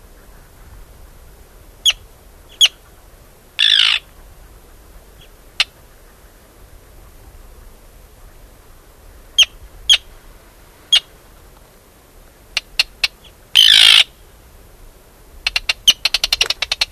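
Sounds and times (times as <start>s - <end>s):
Arctic tern uttering kip notes, screeches and ticking notes: 1.8s - 3.0s, 3.6s - 4.2s, 12.6s - 14.2s, 15.4s - 16.9s.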